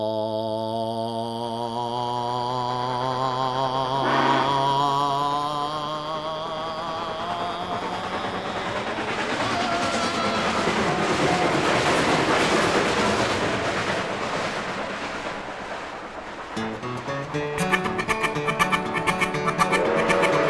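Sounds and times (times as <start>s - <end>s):
train engine chugging on rails: 0.8s - 20.4s
tuneful musical passage: 4.0s - 4.8s, 16.6s - 20.4s.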